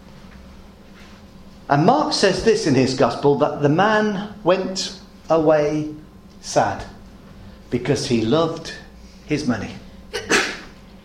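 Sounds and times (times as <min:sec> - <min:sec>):
speech: 0:01.7 - 0:07.0, 0:07.7 - 0:09.8
sneeze: 0:10.2 - 0:10.8.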